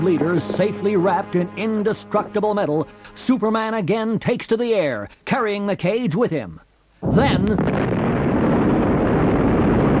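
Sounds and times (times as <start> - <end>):
speech: 0.0 - 7.9
molten lava escaping from a hole with a hissing roaring rumble: 7.0 - 9.9.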